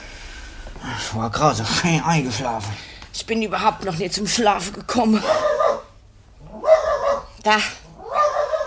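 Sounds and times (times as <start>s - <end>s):
speech: 1.0s - 5.5s, 7.4s - 7.8s
dog barking at night: 5.2s - 5.9s, 6.5s - 7.4s, 8.0s - 8.6s.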